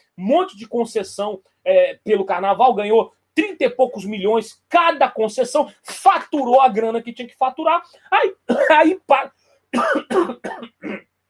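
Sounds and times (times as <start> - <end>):
speech: 0.2 - 11.1
person coughing harshly: 8.5 - 9.0, 9.7 - 11.1.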